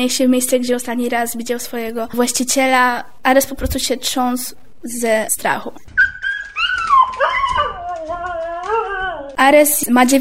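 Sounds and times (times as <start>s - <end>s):
speech: 0.0s - 6.1s, 9.4s - 10.1s
dog whimpering and whining: 6.0s - 9.4s.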